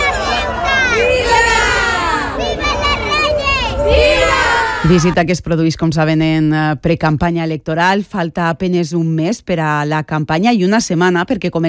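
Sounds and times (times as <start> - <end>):
large crowd cheering and shouting: 0.0 - 5.2
speech: 4.9 - 11.6.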